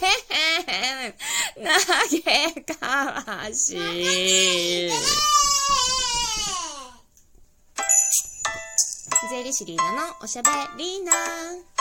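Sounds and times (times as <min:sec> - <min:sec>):
speech: 0:00.7 - 0:06.0, 0:09.3 - 0:11.8
baby crying: 0:03.8 - 0:07.0.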